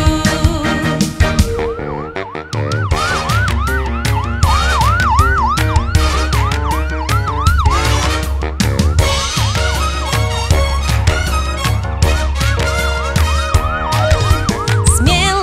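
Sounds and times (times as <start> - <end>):
upbeat musical backing with a steady thumping beat: 0.0 - 15.4
ambulance-style siren wailing: 1.2 - 9.1, 13.2 - 15.4.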